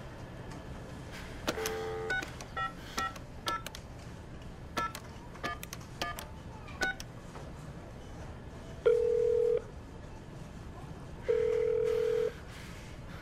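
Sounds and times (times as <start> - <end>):
telephone keypad tones while dialing a number: 1.5 - 3.8, 4.8 - 7.1
long steady telephone tones: 1.6 - 3.2, 8.9 - 9.7, 11.2 - 12.4.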